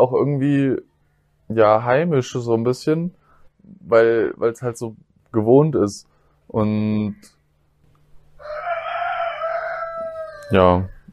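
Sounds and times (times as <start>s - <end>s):
speech: 0.0s - 0.9s, 1.5s - 7.4s, 10.5s - 11.0s
rooster crowing: 8.4s - 11.1s.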